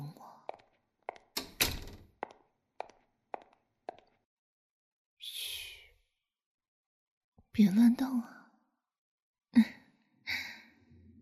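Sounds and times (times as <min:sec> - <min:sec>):
door being shut with soft thunks and knocks: 0:01.3 - 0:02.2
speech: 0:07.6 - 0:08.4.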